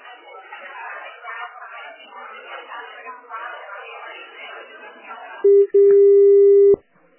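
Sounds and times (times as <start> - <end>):
steady single-pitch telephone tone as a call is transferred: 5.5 - 6.8.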